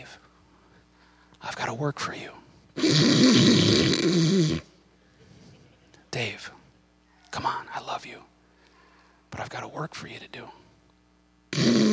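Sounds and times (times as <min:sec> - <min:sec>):
speech: 0:01.5 - 0:04.7, 0:09.8 - 0:10.6
voice imitating a raspy snore: 0:02.8 - 0:04.7, 0:11.5 - 0:11.9.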